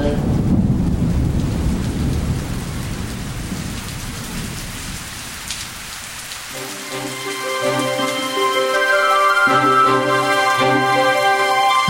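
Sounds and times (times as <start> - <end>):
low rolling rumble of thunder: 0.0 - 6.4
steady rain: 0.0 - 11.8
sustained musical chords: 6.6 - 11.8.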